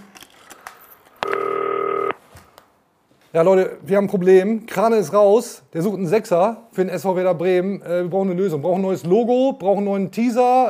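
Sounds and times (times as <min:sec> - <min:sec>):
telephone keypad beeps: 0:01.2 - 0:02.1
speech: 0:03.3 - 0:10.6.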